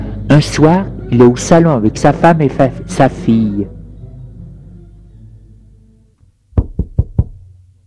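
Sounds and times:
speech: 0.4 - 3.8
knocking on a door: 6.6 - 7.4.

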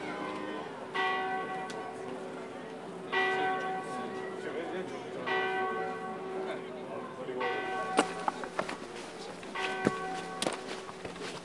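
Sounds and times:
church bell tolling on the Italian coast: 0.0 - 2.4, 3.0 - 4.6, 5.2 - 6.6, 7.3 - 8.4, 9.4 - 10.9.

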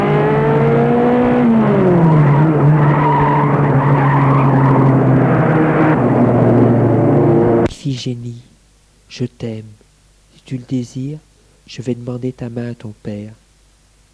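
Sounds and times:
car engine revving as car drives off down the road: 0.0 - 7.7
speech: 9.1 - 9.8, 10.5 - 13.4.

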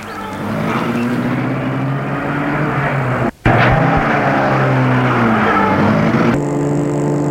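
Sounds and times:
car engine starting and driving off along a mountain road in Savoie France: 0.0 - 7.2.

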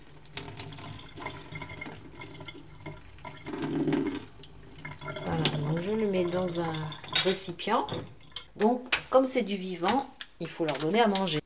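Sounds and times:
running tap water rinsing fermentation grains: 0.0 - 8.8
speech: 6.4 - 11.4.

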